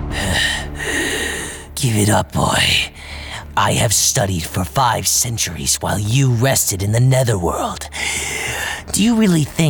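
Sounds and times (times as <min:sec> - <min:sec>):
heavy labored breathing: 0:00.1 - 0:02.1, 0:02.7 - 0:03.6, 0:07.9 - 0:09.6
speech: 0:01.8 - 0:09.6.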